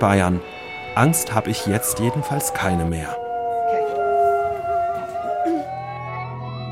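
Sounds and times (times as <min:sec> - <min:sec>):
speech: 0:00.0 - 0:03.2
wolves howling together: 0:00.7 - 0:06.7.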